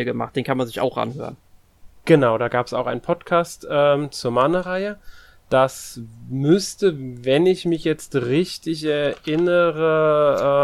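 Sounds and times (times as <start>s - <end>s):
speech: 0.0s - 1.4s, 2.0s - 10.6s
computer keyboard typing: 9.0s - 9.7s.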